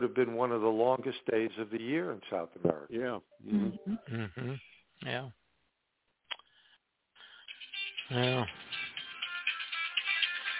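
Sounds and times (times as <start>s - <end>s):
speech: 0.0s - 5.4s, 8.1s - 8.7s
mobile phone ringtone with bright melodic electronic tune: 7.5s - 10.5s.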